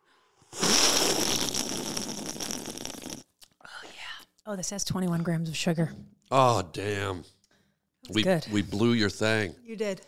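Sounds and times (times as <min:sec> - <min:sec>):
fizzy drink fizzing: 0:00.6 - 0:03.2
speech: 0:04.5 - 0:07.4, 0:08.1 - 0:10.0.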